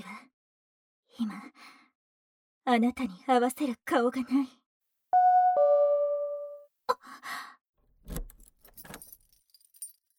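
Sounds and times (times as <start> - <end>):
speech: 1.2 - 1.7, 2.6 - 4.6
two-note electronic chime: 5.2 - 6.6
metallic keys jangling at a door lock: 8.1 - 10.1.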